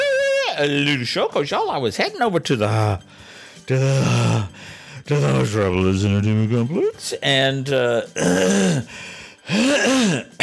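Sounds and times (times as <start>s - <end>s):
speech: 0.6s - 10.4s
throat clearing with phlegm: 9.5s - 10.4s.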